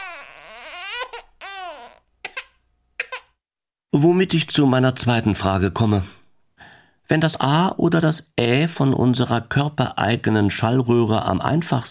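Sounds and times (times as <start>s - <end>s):
baby crying: 0.0s - 3.4s
speech: 4.0s - 6.2s, 7.1s - 11.8s.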